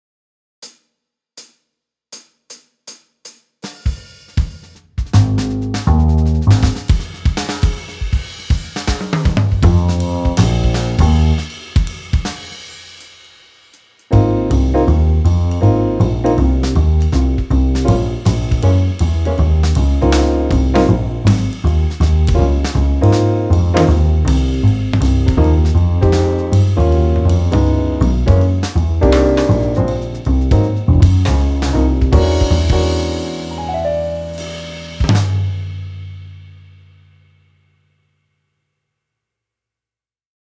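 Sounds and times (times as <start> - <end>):
bright swing backing track at 160 BPM: 4.0 - 12.7, 14.1 - 36.5.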